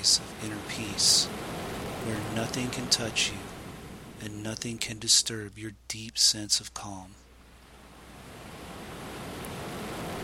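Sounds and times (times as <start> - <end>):
ocean waves washing on shore: 0.0 - 4.2, 7.3 - 10.2
speech: 0.1 - 3.6, 4.2 - 7.2.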